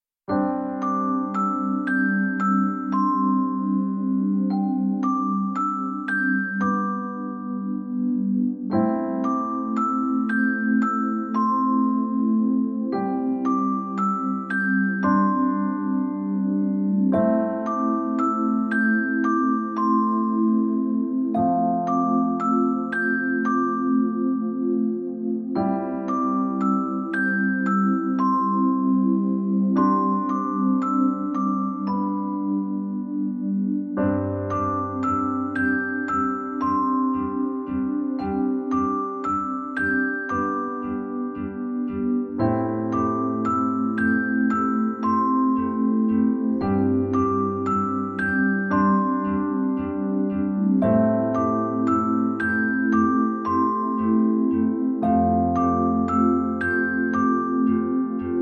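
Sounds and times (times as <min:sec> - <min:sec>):
relaxing piano music: 0:00.3 - 0:58.3.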